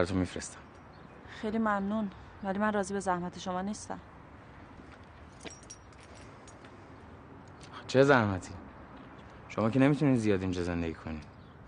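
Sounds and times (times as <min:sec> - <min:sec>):
speech: 0:00.0 - 0:00.7, 0:01.4 - 0:04.1, 0:07.9 - 0:08.6, 0:09.6 - 0:11.6
apartment keys jangling as handed over: 0:05.3 - 0:06.7.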